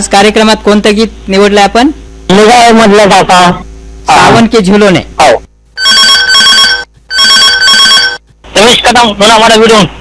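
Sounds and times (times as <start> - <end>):
speech: 0.0 - 5.4, 8.6 - 9.9
telephone ringing with an incoming call: 5.8 - 8.2.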